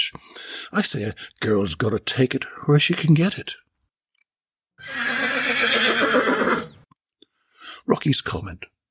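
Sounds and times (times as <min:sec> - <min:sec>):
speech: 0:00.1 - 0:03.6, 0:07.9 - 0:08.8
horse neighing: 0:04.8 - 0:06.8.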